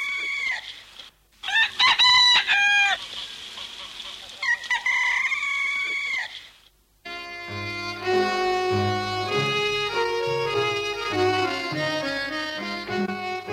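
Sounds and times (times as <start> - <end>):
rooster crowing at dawn: 1.4 - 3.1, 4.4 - 6.4
steady musical passage with sustained tones: 7.1 - 13.5.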